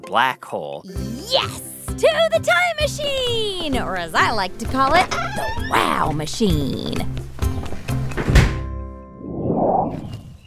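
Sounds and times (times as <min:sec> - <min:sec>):
speech: 0:00.0 - 0:07.2
heavy door thudding open: 0:08.0 - 0:08.8
low whoosh of swinging door: 0:09.0 - 0:10.4.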